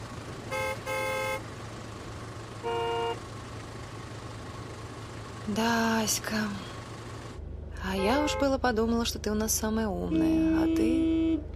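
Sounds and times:
steady road rumble: 0.0s - 11.5s
car horns honking in a traffic jam: 0.5s - 1.5s, 2.6s - 3.2s, 7.8s - 8.6s, 10.1s - 11.5s
speech: 5.5s - 6.7s, 7.9s - 11.2s.

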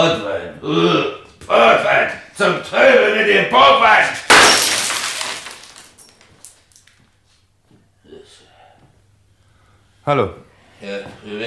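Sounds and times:
speech: 0.0s - 4.2s, 10.1s - 11.4s
window glass being smashed: 4.3s - 6.2s
falling glass shards clinking: 4.3s - 6.8s.

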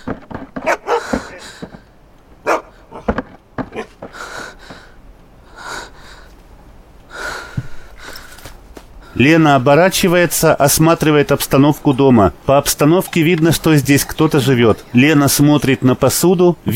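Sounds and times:
dog barking outside the closed door of a house: 0.6s - 1.1s, 2.4s - 3.1s
speech: 9.2s - 16.7s.

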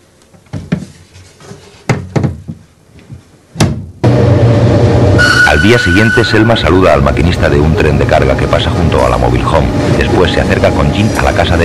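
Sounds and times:
wooden thuds and knocks of a small cupboard door being shut: 1.9s - 2.6s
loud steady sound: 4.0s - 11.6s
speech: 5.5s - 11.6s.

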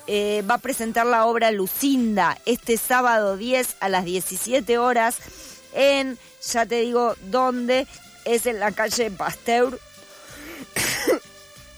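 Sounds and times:
speech: 0.1s - 9.9s
person coughing while talking: 10.5s - 11.2s.

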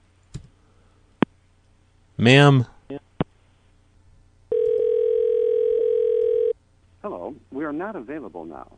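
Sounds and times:
speech: 2.2s - 2.7s, 7.7s - 8.7s
telephone dial tone after hang-up: 4.5s - 6.6s.

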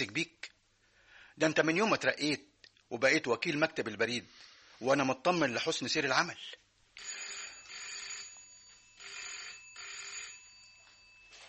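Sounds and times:
speech: 0.0s - 0.4s, 1.4s - 7.1s
telephone ringing in an office: 7.0s - 11.4s.

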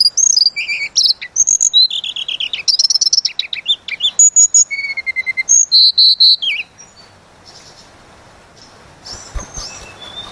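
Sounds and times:
Sunda robin singing chirps and whistled notes: 0.0s - 10.2s.

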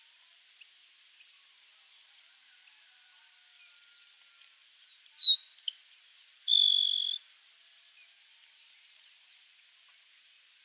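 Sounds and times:
grassland sparrow Ammodramus humeralis humeralis song with buzzy trill: 5.2s - 7.2s.

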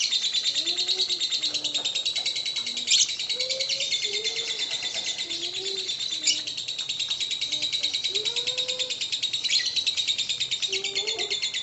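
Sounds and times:
lovebird chattering ngekek song used as a bait song: 0.0s - 11.6s.

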